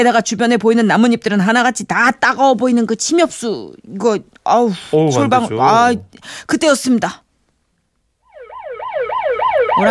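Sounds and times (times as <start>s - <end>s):
speech: 0.0s - 7.2s
police patrol car siren yelping on a highway: 8.3s - 9.8s.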